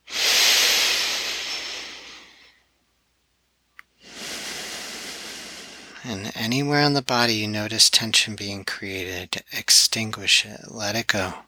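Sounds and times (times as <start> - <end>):
deep inhaling during a guided meditation: 0.0 - 2.7, 4.0 - 6.3
speech: 6.0 - 11.4.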